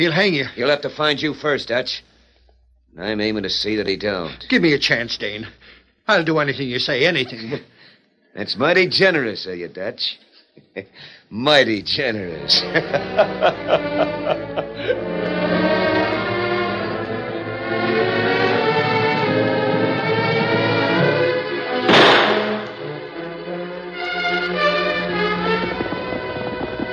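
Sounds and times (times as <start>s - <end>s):
speech: 0.0s - 2.1s, 2.9s - 7.7s, 8.4s - 15.3s
laughter: 6.2s - 7.8s, 12.3s - 15.8s
dramatic music: 12.6s - 26.9s
single sharp gunshot: 21.9s - 22.8s.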